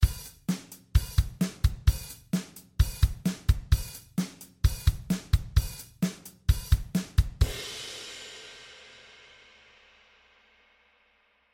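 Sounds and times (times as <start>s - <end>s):
drums playing: 0.0s - 8.4s.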